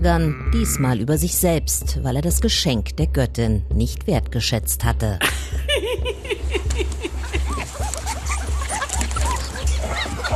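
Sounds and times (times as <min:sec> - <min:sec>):
speech: 0:00.0 - 0:05.6
laughter: 0:05.2 - 0:10.3
puppy yipping and whimpering: 0:07.4 - 0:10.3.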